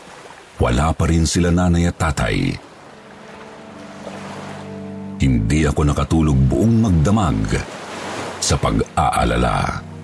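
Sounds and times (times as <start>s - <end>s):
sea waves washing against the shore at nightfall: 0.0s - 0.8s, 1.9s - 5.1s, 6.9s - 10.0s
wind: 0.0s - 10.0s
speech: 0.6s - 2.7s, 5.2s - 7.8s, 8.4s - 9.9s.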